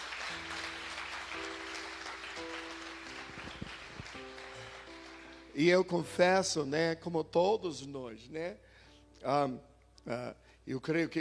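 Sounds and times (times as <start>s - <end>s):
crowd clapping: 0.0s - 5.6s
soft sustained keyboard chords: 0.0s - 11.1s
speech: 5.6s - 11.1s.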